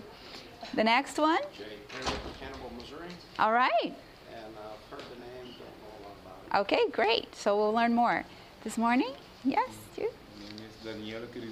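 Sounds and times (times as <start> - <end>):
speech: 0.8 - 2.2, 2.8 - 4.1, 6.5 - 10.2, 10.8 - 11.5
door closing with a muffled thud: 1.9 - 2.8.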